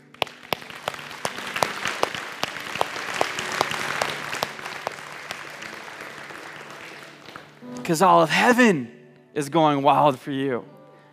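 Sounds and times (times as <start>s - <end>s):
audience clapping wildly after a morning prayer: 0.0s - 7.9s
speech: 7.9s - 10.8s.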